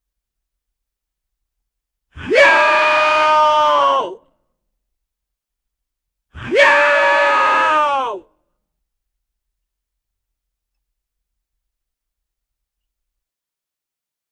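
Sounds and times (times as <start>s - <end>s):
weightlifter screaming: 2.2s - 4.2s, 6.4s - 8.3s.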